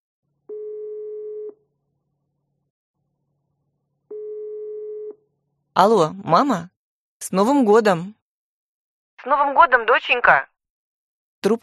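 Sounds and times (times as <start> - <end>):
telephone ringback tone after dialing: 0.5 - 1.6, 4.1 - 5.2
speech: 5.8 - 8.2, 9.2 - 10.5, 11.4 - 11.6.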